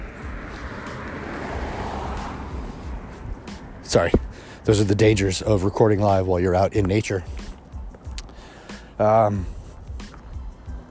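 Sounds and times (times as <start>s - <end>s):
car passing by outdoors: 0.0s - 5.2s
speech: 3.9s - 7.4s, 9.0s - 9.6s.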